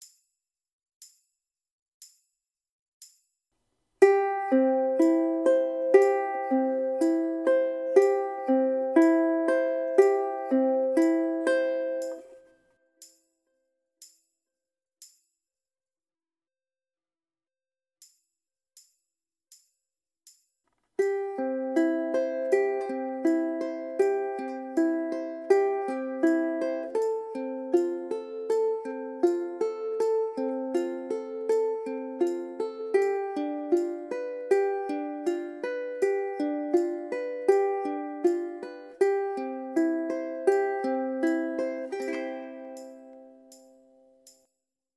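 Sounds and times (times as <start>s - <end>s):
ukulele playing slow up pattern: 4.0s - 12.6s, 21.0s - 44.3s.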